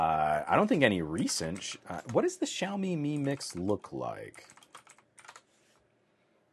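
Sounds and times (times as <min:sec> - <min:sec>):
speech: 0:00.0 - 0:04.6
computer keyboard typing: 0:01.2 - 0:05.5.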